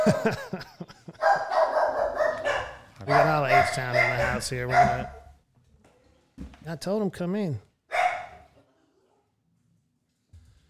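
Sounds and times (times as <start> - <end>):
laughter: 0.0 - 1.5
speech: 0.1 - 1.5, 3.1 - 5.2, 6.4 - 7.7
dogs barking in a house: 1.2 - 5.3, 7.9 - 8.5.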